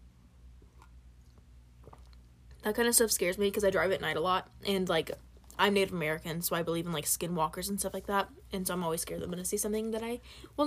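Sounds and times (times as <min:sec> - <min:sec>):
low steady hum: 0:00.0 - 0:10.6
person sipping coffee with slurping and swallowing: 0:00.6 - 0:02.6
speech: 0:02.6 - 0:10.6.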